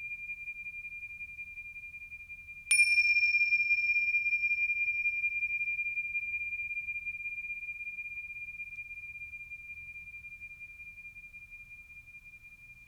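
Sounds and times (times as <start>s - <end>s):
meditation bell struck during a meditation practice: 2.7s - 10.3s.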